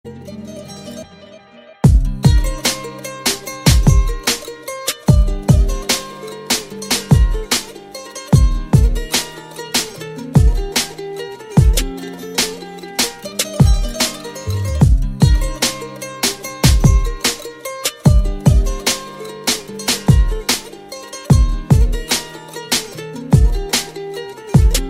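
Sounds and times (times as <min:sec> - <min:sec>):
Turkish saz beat: 0:00.2 - 0:24.8.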